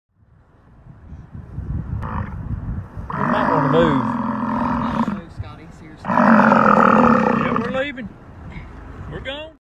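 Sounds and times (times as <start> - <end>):
European bison: 3.1 - 5.3, 6.0 - 7.9.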